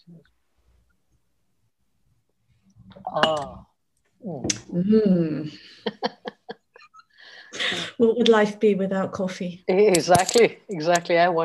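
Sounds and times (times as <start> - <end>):
speech: 3.1 - 6.2, 7.7 - 11.4
two ceramic coffee cups clinking in a toast: 3.2 - 3.6, 9.9 - 11.4
laughter: 5.6 - 8.0.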